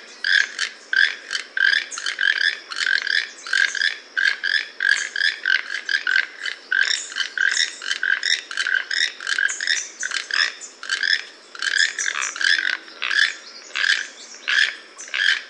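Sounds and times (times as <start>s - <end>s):
toucan croaking: 0.2s - 15.4s.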